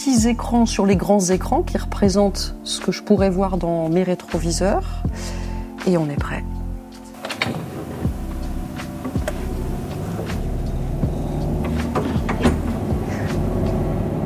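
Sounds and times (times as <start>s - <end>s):
speech: 0.0s - 6.5s
simulated car engine and road rumble on a motorway at 120 km/h: 7.2s - 14.2s.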